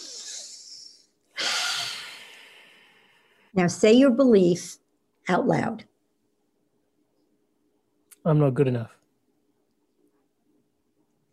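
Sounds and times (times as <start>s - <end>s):
group of people taking a deep breath together: 1.4s - 3.5s
speech: 3.6s - 5.9s, 8.2s - 9.0s.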